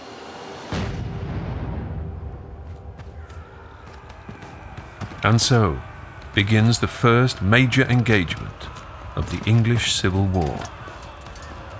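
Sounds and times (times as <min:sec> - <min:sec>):
cannon blast: 0:00.7 - 0:02.4
speech: 0:05.2 - 0:10.8.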